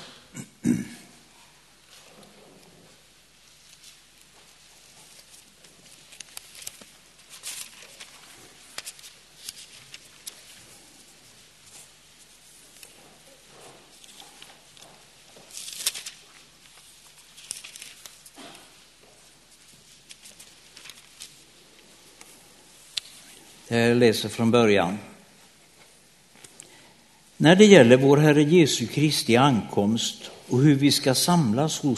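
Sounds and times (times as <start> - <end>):
Bible pages rustling as they are leafed through: 3.6 - 23.6
speech: 23.7 - 25.1, 27.4 - 31.9.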